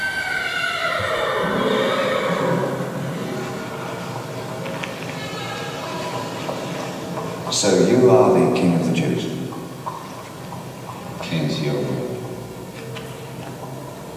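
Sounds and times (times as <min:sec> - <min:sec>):
horse whinnying: 0:00.0 - 0:07.4
steady noisy background: 0:00.0 - 0:14.1.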